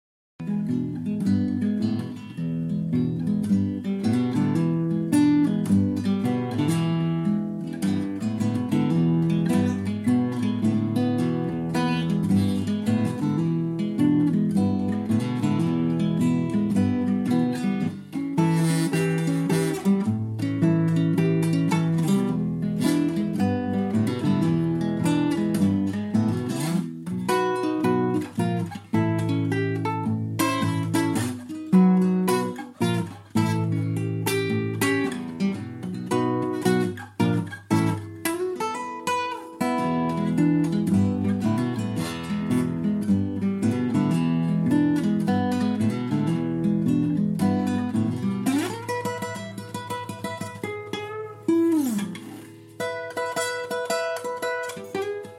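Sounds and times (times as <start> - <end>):
guitar: 0.4 - 55.3.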